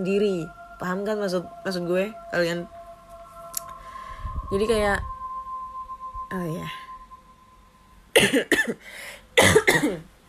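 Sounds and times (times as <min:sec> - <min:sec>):
speech: 0:00.0 - 0:02.8, 0:04.5 - 0:05.1, 0:06.3 - 0:06.8, 0:08.2 - 0:10.1
faint steady hum: 0:00.0 - 0:10.2
harsh coughing: 0:08.1 - 0:10.1.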